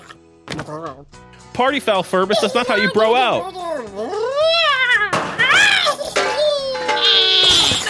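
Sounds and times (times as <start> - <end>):
speech: 1.6 - 4.1
cat yowling while attacking: 4.1 - 6.0, 6.7 - 7.8.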